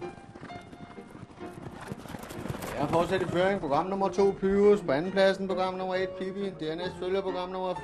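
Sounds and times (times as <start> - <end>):
ponies trotting in a pony race: 0.0 - 5.3
speech: 2.9 - 7.8.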